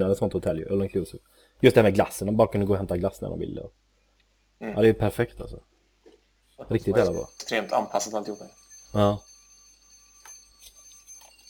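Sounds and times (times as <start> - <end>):
speech: 0.0 - 3.8, 4.6 - 5.7, 6.6 - 9.3
kitchen timer alarm ringing for boiled eggs: 6.9 - 11.4.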